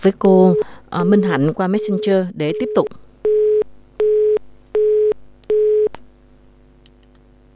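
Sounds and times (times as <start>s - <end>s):
speech: 0.0s - 3.0s
telephone busy tone beeps after a dropped call: 0.5s - 5.9s.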